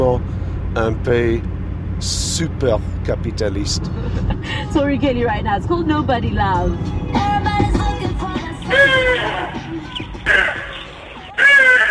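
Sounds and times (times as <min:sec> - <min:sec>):
speech: 0:00.0 - 0:08.1
Hadeda ibises calling in the morning around a house: 0:08.7 - 0:11.8.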